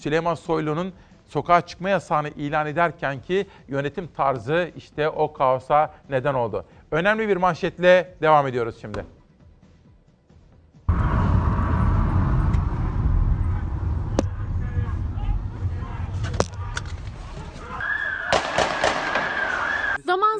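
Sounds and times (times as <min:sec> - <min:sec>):
speech: 0:00.0 - 0:09.2
crowd commotion: 0:10.9 - 0:20.0
street noise: 0:10.9 - 0:20.0
gunshots fired in the street: 0:18.2 - 0:20.0.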